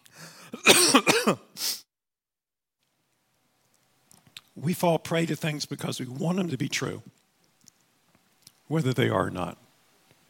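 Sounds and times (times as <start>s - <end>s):
harsh raspy coughing: 0.5s - 1.6s
speech: 4.8s - 7.2s, 8.7s - 9.6s.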